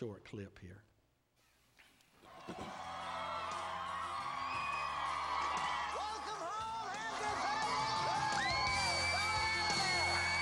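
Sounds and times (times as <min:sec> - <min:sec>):
speech: 0:00.0 - 0:00.9, 0:02.4 - 0:03.0
large crowd cheering, whooping and yelling: 0:02.2 - 0:10.4.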